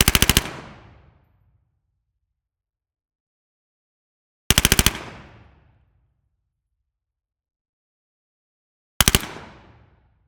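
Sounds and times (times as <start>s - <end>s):
MP5 9mm submachine gun firing bursts in a large hall: 0.0s - 0.8s, 4.5s - 5.3s, 9.0s - 9.6s.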